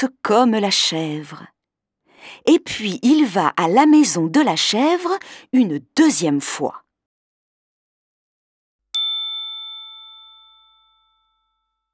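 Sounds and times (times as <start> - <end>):
speech: 0.0 - 1.5, 2.2 - 6.8
doorbell ringing with a bright metallic ding: 9.0 - 11.9.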